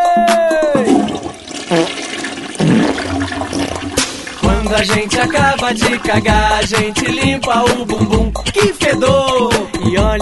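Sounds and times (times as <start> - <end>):
speech: 0.2 - 0.4, 4.7 - 10.2
toilet flushing: 0.8 - 8.0.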